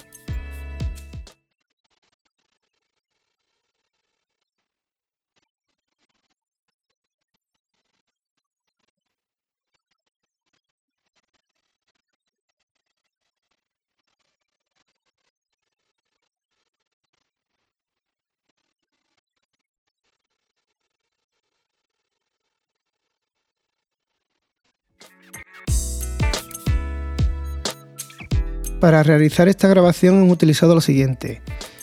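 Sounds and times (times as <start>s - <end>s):
amplified electric guitar through amps: 25.0s - 31.8s
speech: 28.8s - 31.5s.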